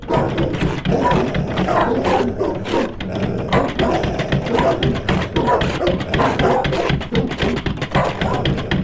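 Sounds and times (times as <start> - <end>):
several agitated dogs barking and snarling at a door: 0.0 - 8.8.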